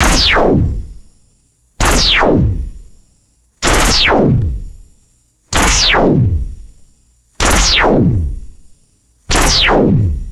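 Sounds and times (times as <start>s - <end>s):
retro sci-fi laser blasts: 0.0s - 1.0s, 1.8s - 3.0s, 3.6s - 4.8s, 5.5s - 6.8s, 7.4s - 8.7s, 9.3s - 10.3s.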